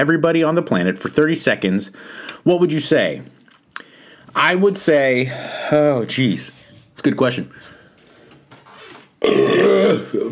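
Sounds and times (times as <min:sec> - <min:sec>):
speech: 0:00.0 - 0:03.4, 0:04.3 - 0:07.8, 0:09.2 - 0:10.3
loud burp: 0:09.2 - 0:10.3.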